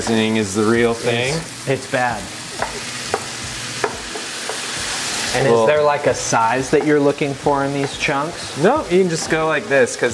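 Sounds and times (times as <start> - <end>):
speech: 0.0 - 2.9, 5.3 - 10.1
sausage frying in a pan while being stirred to brown: 0.0 - 10.1.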